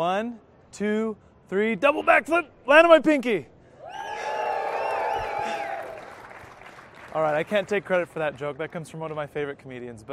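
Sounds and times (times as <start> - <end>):
speech: 0.0 - 3.5, 7.1 - 10.1
high whoops from the crowd: 3.8 - 6.2
large crowd cheering and shouting loudly: 3.9 - 6.0.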